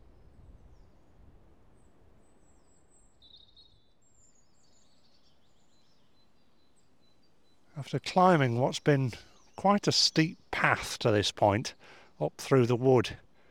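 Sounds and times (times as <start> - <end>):
birds chirping and twittering in woodland trees: 4.5 - 13.5
soft steady outdoor hush: 4.5 - 13.5
speech: 7.8 - 13.2.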